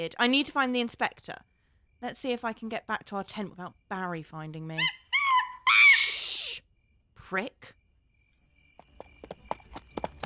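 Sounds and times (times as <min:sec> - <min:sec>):
speech: 0:00.0 - 0:05.0, 0:07.3 - 0:07.8
hoof clops of a horse shuffling in place: 0:08.8 - 0:10.2.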